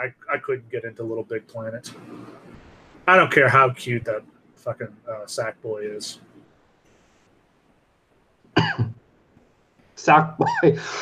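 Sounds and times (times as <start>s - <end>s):
speech: 0.0s - 6.3s, 10.0s - 11.0s
person coughing: 8.6s - 8.9s.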